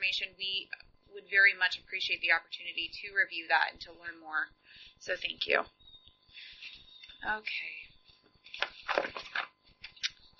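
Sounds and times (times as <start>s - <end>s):
speech: 0.0s - 6.5s, 7.2s - 7.9s, 8.6s - 9.6s
papers rustling and shuffling: 8.0s - 10.3s.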